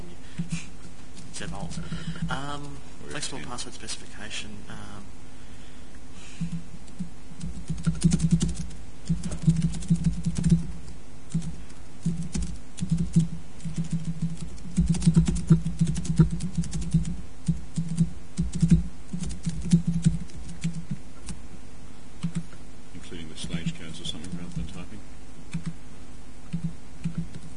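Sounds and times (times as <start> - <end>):
low constant hum: 0.0 - 27.5
speech: 1.4 - 5.2, 6.4 - 6.7
typing on a Windows computer keyboard: 6.9 - 10.7, 11.3 - 21.4, 22.2 - 22.4, 25.5 - 25.7, 26.5 - 27.5.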